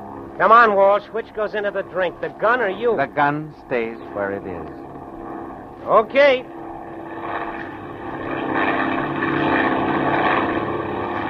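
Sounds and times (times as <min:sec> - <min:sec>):
propeller aircraft engine droning as the plane climbs: 0:00.0 - 0:11.2
speech: 0:00.4 - 0:04.8, 0:05.8 - 0:06.6.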